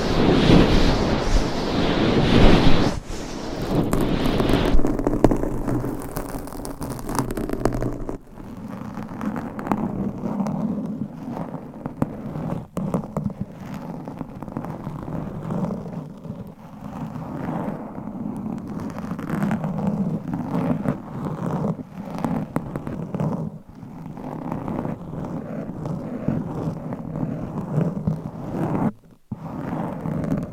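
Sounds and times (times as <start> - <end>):
dull steady rustling rumble: 0.0 - 8.3
microphone scratching and rubbing: 0.0 - 30.5.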